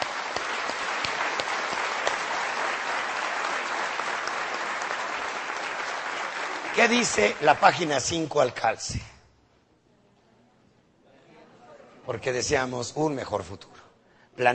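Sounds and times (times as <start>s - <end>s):
audience applause at a business meeting: 0.0s - 8.6s
speech: 6.8s - 9.1s, 12.1s - 13.8s, 14.4s - 14.5s.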